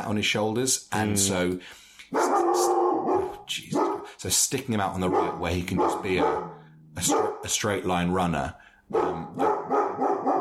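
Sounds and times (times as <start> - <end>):
speech: 0.1 - 9.5
dog barking: 2.1 - 4.1, 5.1 - 7.5, 8.9 - 10.4.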